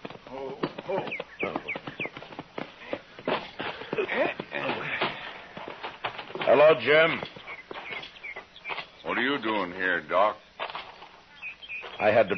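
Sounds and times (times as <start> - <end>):
horse hooves clip-clopping by a corral: 0.0 - 12.3
speech: 6.6 - 7.3, 9.2 - 10.4, 12.0 - 12.3.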